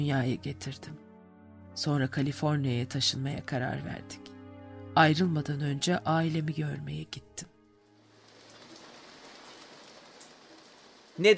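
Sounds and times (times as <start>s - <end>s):
speech: 0.0s - 1.0s, 1.8s - 4.3s, 5.0s - 7.5s, 11.2s - 11.3s
steady rain pattering on a surface: 7.9s - 11.3s.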